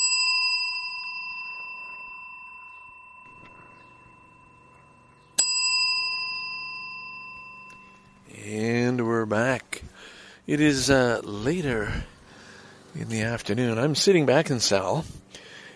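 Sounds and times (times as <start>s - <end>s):
bright bell ringing: 0.0s - 8.8s
speech: 9.3s - 9.6s, 10.5s - 12.1s, 13.0s - 15.4s.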